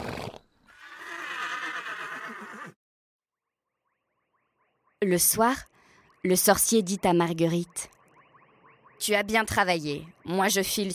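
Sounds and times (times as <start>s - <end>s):
horse whinnying: 0.0s - 2.8s
speech: 5.0s - 8.0s, 9.0s - 10.9s.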